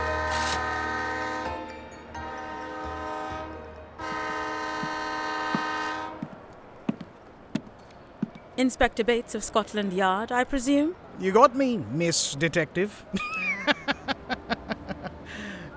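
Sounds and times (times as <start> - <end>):
train horn at a station: 0.0 - 6.3
speech: 8.6 - 13.4
laughter: 13.1 - 15.7.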